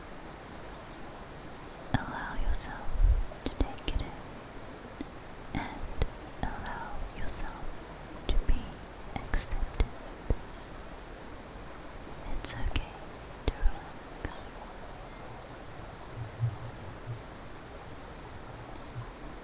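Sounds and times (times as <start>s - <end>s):
stream water flowing: 0.0s - 19.4s.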